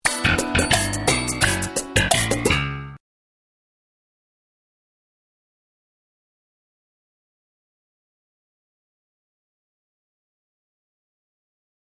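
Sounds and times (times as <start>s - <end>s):
sitcom bass riff: 0.0s - 3.0s.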